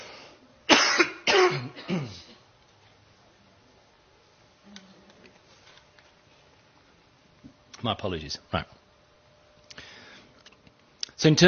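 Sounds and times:
person coughing: 0:00.7 - 0:02.4
speech: 0:07.8 - 0:08.8, 0:11.2 - 0:11.4.

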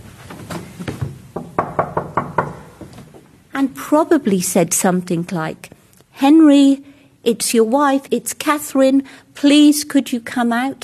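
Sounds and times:
soft knocking on a wooden door: 0:01.0 - 0:03.2
speech: 0:03.6 - 0:10.8.

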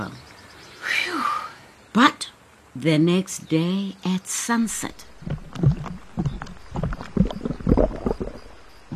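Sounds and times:
speech: 0:00.0 - 0:00.3, 0:02.0 - 0:02.2, 0:02.8 - 0:06.0
oars dipping in and out of river water as a boat is rowed: 0:05.0 - 0:08.9.

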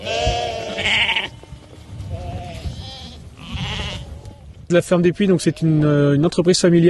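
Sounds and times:
flock of sheep bleating on a family farm in France: 0:00.0 - 0:04.5
sheep farmer calling to sheep on a family farm in France: 0:04.7 - 0:06.8.

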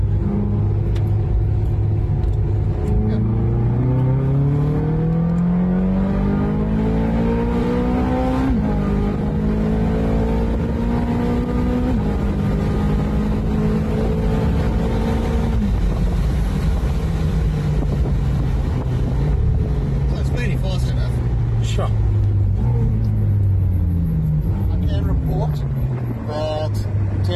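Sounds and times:
open-top car engine accelerating out of a hairpin bend: 0:00.0 - 0:27.3
wind buffeting the microphone: 0:15.1 - 0:20.1.

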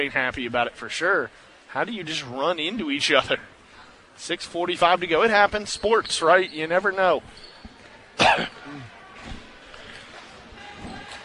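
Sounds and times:
speech: 0:00.0 - 0:03.6, 0:04.2 - 0:07.5, 0:08.2 - 0:09.4
single sharp cough: 0:08.2 - 0:08.9
throat-clearing noises: 0:08.2 - 0:09.0.

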